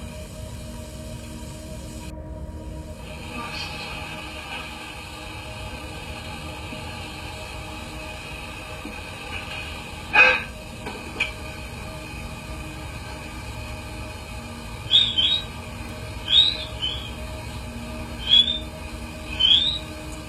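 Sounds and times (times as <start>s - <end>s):
low hum and hiss of tape playback: 0.0s - 20.2s
short rising whistles on a played tape recording: 14.8s - 17.3s, 18.1s - 20.2s.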